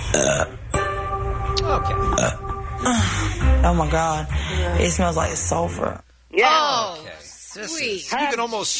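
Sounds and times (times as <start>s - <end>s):
speech: 0.1s - 0.6s, 1.7s - 8.7s
person belching: 0.1s - 0.7s, 2.1s - 3.1s.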